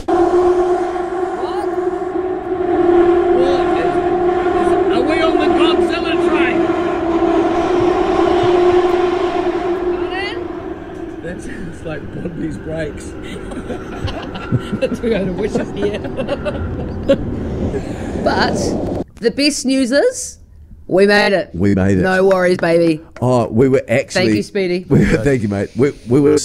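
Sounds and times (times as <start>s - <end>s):
underground train screeching metal on metal in a tunnel: 0.0s - 19.0s
underground train wheels rumbling and clattering: 3.4s - 19.0s
laughter: 13.2s - 18.4s, 24.2s - 25.7s
speech: 18.4s - 26.4s.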